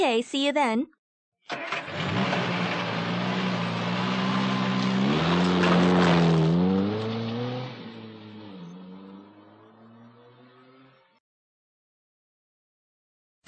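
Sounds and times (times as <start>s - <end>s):
speech: 0.0s - 2.3s
car engine accelerating as the car pulls away: 1.5s - 11.2s.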